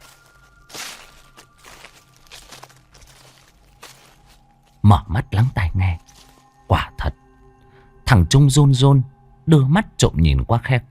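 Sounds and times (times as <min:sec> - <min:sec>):
light footsteps on dry leaves: 0:00.0 - 0:06.6
speech: 0:04.9 - 0:06.1, 0:08.1 - 0:10.8.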